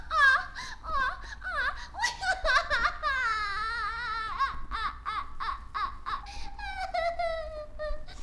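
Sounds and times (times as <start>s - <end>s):
woman wailing and sobbing with high quavering cries: 0.0s - 8.2s.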